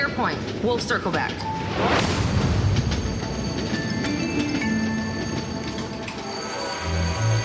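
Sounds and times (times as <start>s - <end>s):
runaway train rumbling on tracks: 0.0s - 7.4s
speech: 0.2s - 2.3s
high metallic whines and squeals of train wheels: 2.6s - 7.4s.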